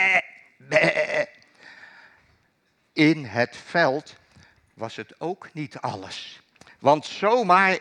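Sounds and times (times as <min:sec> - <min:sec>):
sheep bleating in a field: 0:00.0 - 0:01.4
speech: 0:03.0 - 0:04.2, 0:04.8 - 0:07.7.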